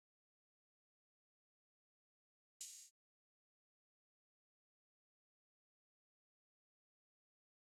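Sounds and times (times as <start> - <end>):
RnB drum loop at 114 BPM with open hi-hat: 2.6 - 2.9.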